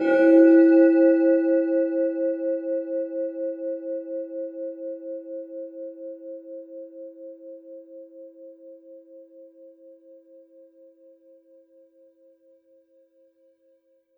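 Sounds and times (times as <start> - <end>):
synthesizer shrine bell patch: 0.0 - 3.8.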